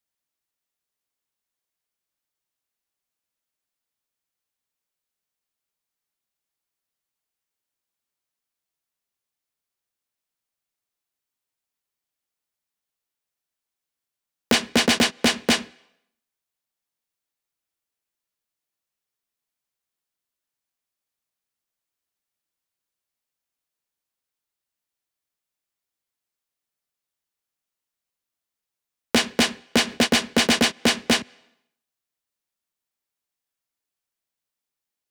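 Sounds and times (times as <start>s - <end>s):
snare drum fill: 14.5s - 15.8s, 29.2s - 31.4s.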